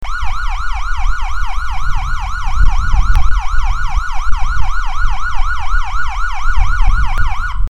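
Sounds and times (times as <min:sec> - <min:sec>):
hiper yelp siren: 0:00.0 - 0:07.6.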